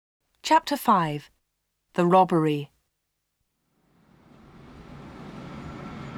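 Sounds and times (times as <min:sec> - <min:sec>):
speech: 0:00.5 - 0:01.4, 0:02.0 - 0:02.7
train from London thundering along inside a long tunnel: 0:04.0 - 0:06.1.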